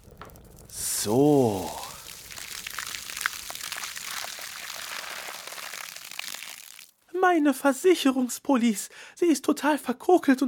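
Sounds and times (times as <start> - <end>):
water poured from a watering can: 0.0 - 7.0
speech: 1.0 - 1.8, 7.3 - 10.4.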